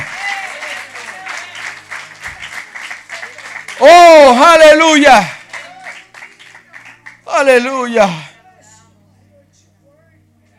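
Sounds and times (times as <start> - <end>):
audience applauding loudly: 0.0 - 8.2
speech: 3.8 - 5.4, 7.4 - 8.3.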